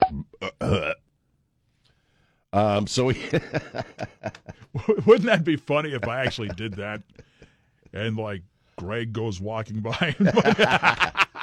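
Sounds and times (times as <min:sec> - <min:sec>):
croaky burp: 0:00.0 - 0:01.0
speech: 0:00.1 - 0:01.0, 0:02.5 - 0:07.3, 0:07.9 - 0:11.2
laughter: 0:03.1 - 0:07.4, 0:09.9 - 0:11.4.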